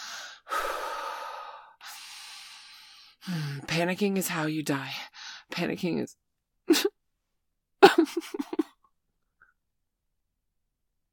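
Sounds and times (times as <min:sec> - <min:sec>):
deep heavy breathing from a panicking person trying to calm down: 0:00.0 - 0:03.6
speech: 0:03.2 - 0:07.0.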